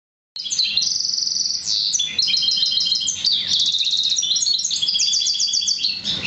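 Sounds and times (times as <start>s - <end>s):
Oriental magpie-robin singing high whistles and trills: 0.4s - 6.2s.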